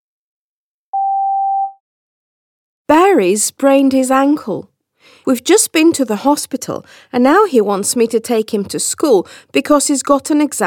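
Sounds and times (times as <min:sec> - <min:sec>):
steady telephone line tone during a call: 0:01.0 - 0:01.8
speech: 0:03.1 - 0:10.6.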